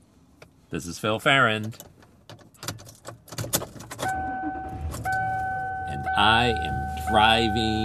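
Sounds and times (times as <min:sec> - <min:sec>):
speech: 0:00.7 - 0:02.0, 0:06.2 - 0:07.8
car keys jangling and clicking into the ignition: 0:01.7 - 0:06.0.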